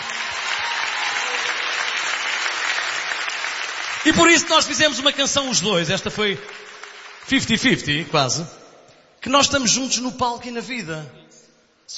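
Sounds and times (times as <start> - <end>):
audience applauding: 0.0 - 8.0
speech: 4.0 - 6.6, 7.3 - 8.6, 9.2 - 11.3.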